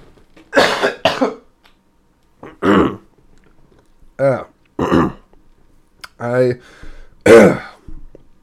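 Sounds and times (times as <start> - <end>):
harsh coughing: 0.5 - 1.5, 4.8 - 5.3, 7.2 - 7.8
throat clearing: 2.4 - 3.1, 4.8 - 5.3, 7.2 - 8.0.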